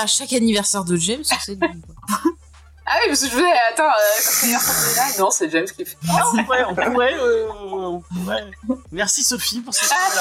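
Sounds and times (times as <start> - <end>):
speech: 0.0 - 2.2, 2.9 - 10.2
cat hissing: 4.0 - 5.2.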